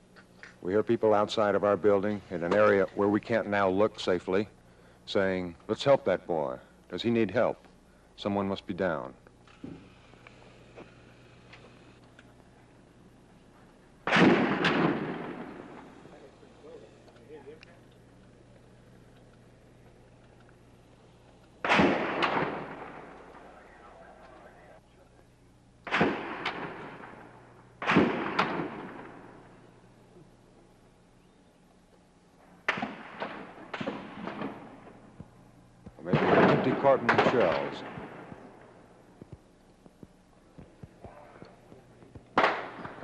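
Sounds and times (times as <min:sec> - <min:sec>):
speech: 0:00.6 - 0:09.9
bullets ricocheting off the top of a tower: 0:14.0 - 0:16.3, 0:21.6 - 0:23.6, 0:25.8 - 0:29.4, 0:32.7 - 0:35.0, 0:36.1 - 0:38.4, 0:42.4 - 0:43.0
gunfire: 0:14.0 - 0:16.3, 0:21.6 - 0:23.5, 0:25.8 - 0:29.5, 0:32.6 - 0:35.0, 0:36.0 - 0:38.7, 0:42.4 - 0:43.0.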